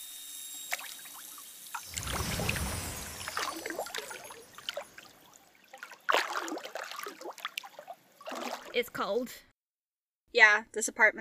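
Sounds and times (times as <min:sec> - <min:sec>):
person wading into cold water in an apartment: 0:00.7 - 0:08.9
speech: 0:08.8 - 0:09.5, 0:10.3 - 0:11.1.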